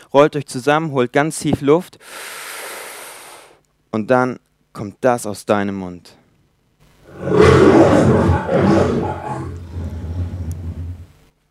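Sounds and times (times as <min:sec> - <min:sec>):
speech: 0:00.1 - 0:02.5, 0:03.9 - 0:06.2, 0:07.2 - 0:09.3
person imitating a lion's roar: 0:07.1 - 0:11.1.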